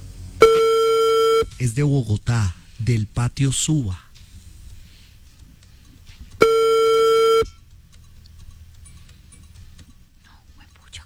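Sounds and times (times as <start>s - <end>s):
telephone busy tone on a rejected call: 0.4s - 1.6s, 6.4s - 7.6s
speech: 1.6s - 4.0s.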